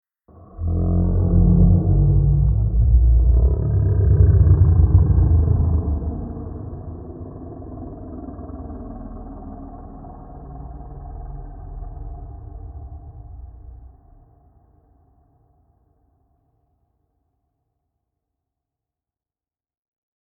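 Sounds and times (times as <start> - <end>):
lurking horror monster sound: 0.3 - 14.3.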